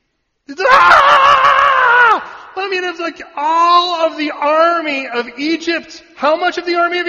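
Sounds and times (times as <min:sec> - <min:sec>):
speech: 0:00.5 - 0:01.1, 0:02.6 - 0:07.0
voice imitating a terrified shriek: 0:00.5 - 0:02.5.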